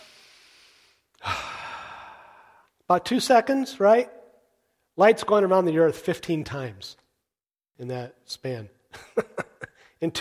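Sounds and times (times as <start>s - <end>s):
deep inhale: 0.0s - 2.7s
speech: 2.9s - 4.2s, 5.0s - 7.0s, 7.8s - 9.4s, 10.0s - 10.1s.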